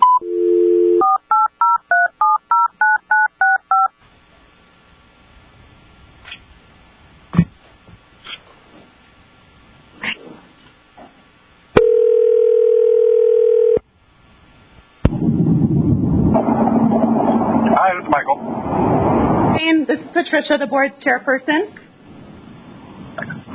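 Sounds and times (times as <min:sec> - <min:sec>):
telephone dial tone: 0:00.0 - 0:03.9, 0:11.8 - 0:13.8
loud telephone line static: 0:01.0 - 0:23.5
speech: 0:20.3 - 0:21.8.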